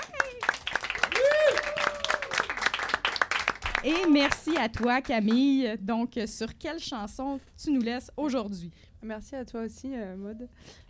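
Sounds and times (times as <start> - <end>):
live audience applauding with dense steady clapping: 0.0 - 4.9
person whooping and cheering: 1.0 - 2.5
speech: 3.8 - 10.8.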